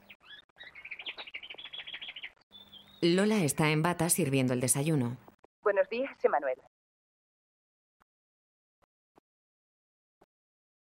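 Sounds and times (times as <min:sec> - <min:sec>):
small caged bird singing: 0:00.0 - 0:03.2
speech: 0:03.0 - 0:06.7.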